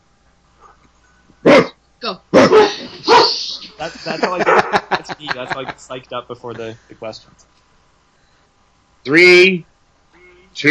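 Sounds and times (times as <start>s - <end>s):
person imitating a dog barking: 1.4s - 3.6s, 4.3s - 4.9s
laughter: 3.7s - 5.9s
speech: 4.0s - 7.6s, 9.0s - 9.7s, 10.6s - 10.7s.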